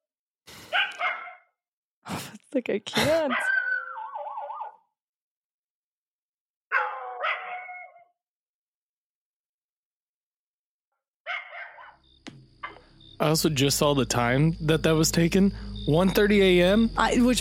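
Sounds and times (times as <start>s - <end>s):
dogs barking and yelping in a played video: 0.6s - 1.5s, 3.2s - 4.9s, 6.7s - 8.2s, 11.3s - 12.0s, 12.6s - 12.8s
speech: 2.5s - 3.6s, 13.2s - 17.3s.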